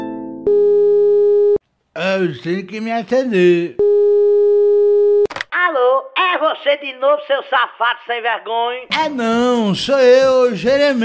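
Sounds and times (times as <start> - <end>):
steady electronic phone tone after a call is hung up: 0.5 - 1.6, 3.8 - 5.3
speech: 2.1 - 3.8, 6.6 - 11.0.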